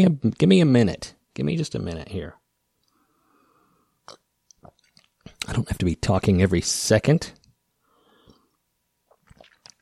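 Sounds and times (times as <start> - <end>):
speech: 0.0 - 2.4, 5.5 - 7.4
faint hum: 0.0 - 9.7
slurping and swallowing coffee: 4.1 - 5.5, 9.1 - 9.7.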